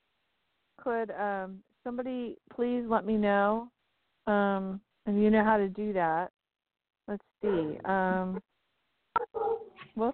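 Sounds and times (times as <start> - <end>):
speech: 0.8 - 6.4, 7.1 - 8.5, 10.0 - 10.1
dog whimpering, barking and yelping: 9.2 - 9.8.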